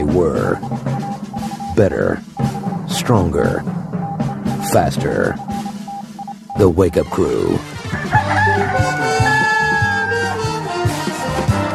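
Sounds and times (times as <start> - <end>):
rhythmic music bed with a thumping low beat: 0.0 - 11.7
speech: 0.2 - 1.0, 1.8 - 2.3, 3.0 - 3.8, 4.6 - 5.6, 6.6 - 9.0
rooster crowing: 7.8 - 11.0.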